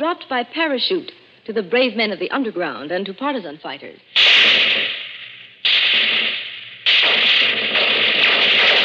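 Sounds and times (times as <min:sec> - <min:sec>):
speech: 0:00.0 - 0:04.8
Bren gun automatic weapon firing: 0:04.2 - 0:08.8.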